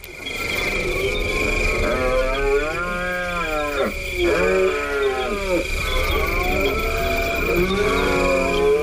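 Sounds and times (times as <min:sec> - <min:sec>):
steady high-pitched hum: 0:00.0 - 0:08.8
rutting deer stag bellowing: 0:01.8 - 0:08.8.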